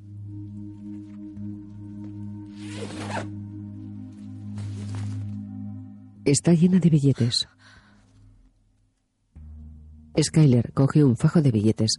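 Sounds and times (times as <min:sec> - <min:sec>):
bag zipper being unzipped: 0:02.5 - 0:03.4
speech: 0:06.3 - 0:07.6, 0:10.2 - 0:11.9.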